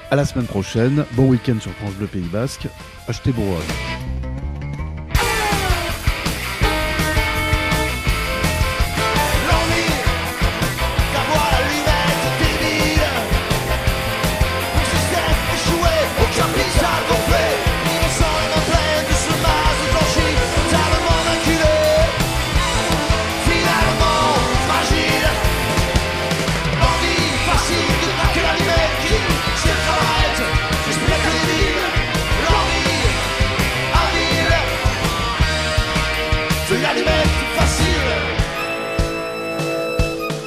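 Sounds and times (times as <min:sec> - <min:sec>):
full band playing a loud live rock performance: 0:00.0 - 0:40.4
speech: 0:00.1 - 0:04.1.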